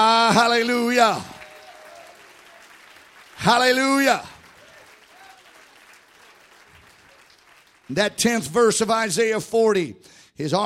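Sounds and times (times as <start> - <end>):
speech: 0.3 - 1.4, 3.4 - 4.3, 7.9 - 10.6
crowd clapping in praise of God: 0.4 - 8.6.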